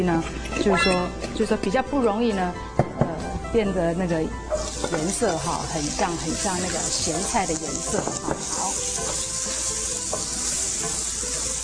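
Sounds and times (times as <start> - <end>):
speech: 0.0 - 2.7, 3.5 - 8.8
green vegetables sizzling and crackling in a hot wok: 4.5 - 11.6.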